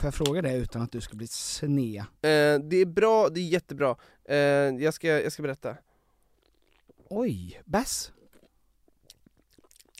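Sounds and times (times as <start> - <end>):
speech: 0.0 - 5.9, 7.1 - 8.2
quick irregular mouth clicks and squelches: 6.2 - 9.9
loud smacking chewing: 6.3 - 7.1, 8.1 - 9.9.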